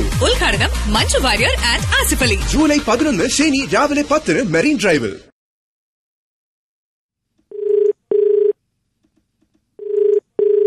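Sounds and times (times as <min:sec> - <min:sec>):
speech: 0:00.9 - 0:05.3
telephone ringing for a radio phone-in call: 0:07.5 - 0:08.6, 0:09.8 - 0:10.6.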